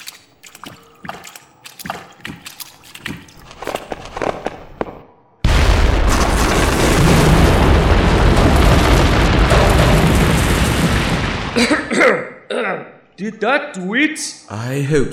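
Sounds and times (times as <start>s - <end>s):
scattered crackling debris: 2.8s - 11.9s
massive explosion blast: 5.4s - 11.9s
speech: 13.2s - 15.1s.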